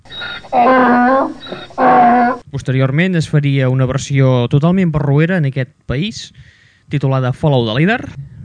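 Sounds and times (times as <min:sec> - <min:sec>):
donkey braying: 0:00.1 - 0:02.4
speech: 0:02.5 - 0:08.4.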